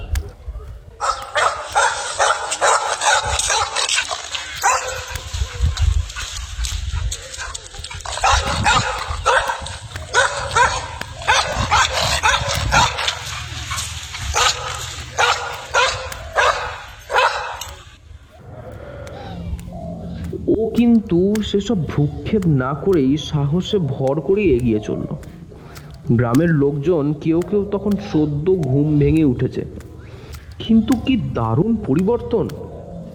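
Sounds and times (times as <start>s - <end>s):
village dogs barking: 0.0s - 33.1s
speech: 21.5s - 25.3s, 26.1s - 29.8s, 30.6s - 32.6s.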